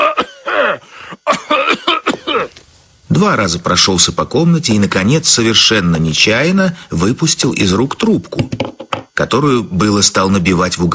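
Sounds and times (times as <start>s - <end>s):
throat-clearing bursts: 0.0s - 2.6s
voice imitating coughing: 0.0s - 2.6s
speech: 3.2s - 10.9s.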